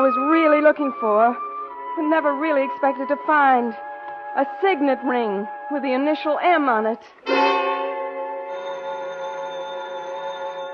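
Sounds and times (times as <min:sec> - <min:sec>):
speech: 0:00.0 - 0:07.5
telephone bell ringing: 0:08.4 - 0:10.7.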